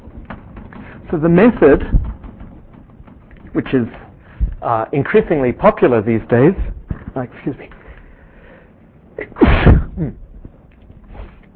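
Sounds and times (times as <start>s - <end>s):
speech: 1.1s - 2.0s, 3.6s - 4.0s, 4.6s - 7.8s, 9.2s - 10.2s
sneeze: 9.2s - 10.2s.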